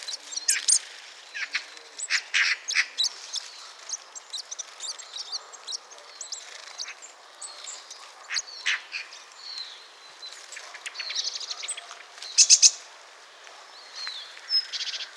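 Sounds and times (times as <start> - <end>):
Blue tit Cyanistes caeruleus chirping and giving call notes: 0.0 - 12.8.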